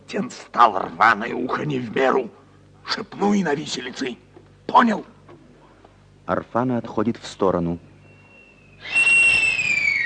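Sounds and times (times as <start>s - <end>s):
speech: 0.1s - 5.1s, 6.3s - 7.9s
man's loud piercing whistle: 8.0s - 10.0s.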